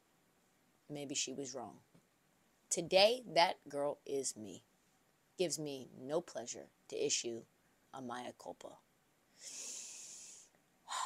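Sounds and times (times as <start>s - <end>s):
speech: 0.9s - 1.9s, 2.7s - 4.7s, 5.4s - 8.8s, 9.4s - 9.7s
person taking a deep breath: 9.3s - 11.0s.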